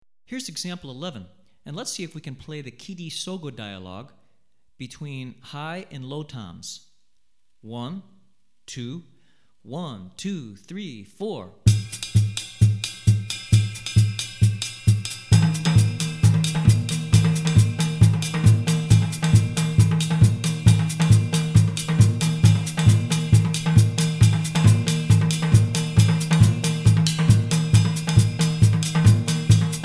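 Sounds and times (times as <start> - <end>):
drum kit playing West African gahu rhythm: 11.7 - 29.8.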